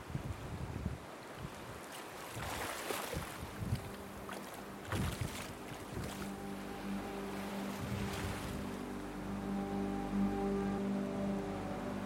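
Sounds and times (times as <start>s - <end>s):
gusty wind: 0.0s - 9.8s
River Thames water splashing and sloshing in London: 1.1s - 9.4s
low steady boat engine drone: 3.9s - 12.0s.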